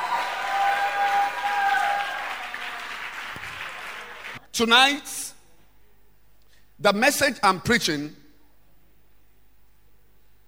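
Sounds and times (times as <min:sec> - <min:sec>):
large crowd clapping hands: 0:00.0 - 0:04.4
speech: 0:04.6 - 0:05.2, 0:06.8 - 0:08.2.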